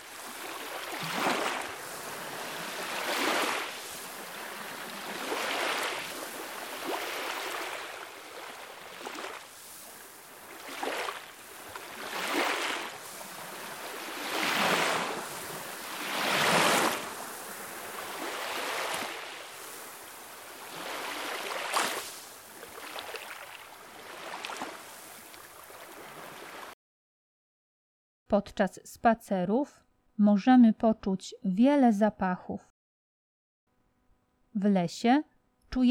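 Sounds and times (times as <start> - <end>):
ocean waves breaking on the shore: 0.0 - 26.8
speech: 28.3 - 32.7, 34.6 - 35.8.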